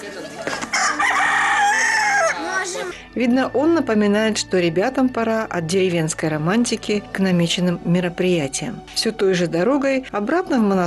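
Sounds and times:
rooster crowing: 0.7s - 2.9s
speech: 3.2s - 10.8s.

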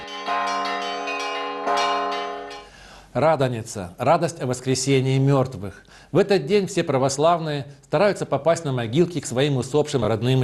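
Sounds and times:
Easter church bells ringing in a full resonant peal: 0.0s - 2.7s
speech: 3.2s - 10.4s.

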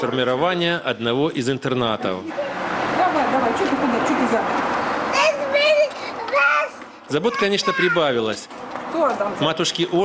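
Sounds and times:
speech: 0.0s - 2.5s, 3.2s - 4.8s, 7.1s - 10.0s
two young boys babbling and chattering while playing: 5.0s - 8.3s.

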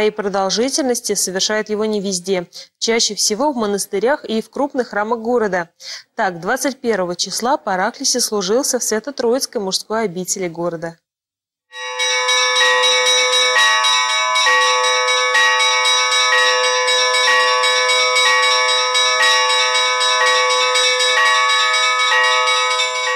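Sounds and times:
speech: 0.0s - 11.0s
monastery church bells pealing before evening service: 11.8s - 23.1s.

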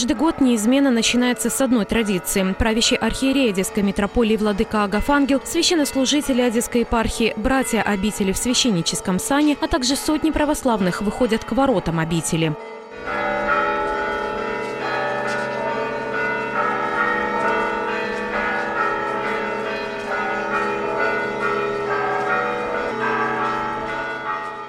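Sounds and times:
speech: 0.0s - 13.4s
church bells ringing in a peal: 0.0s - 24.6s.

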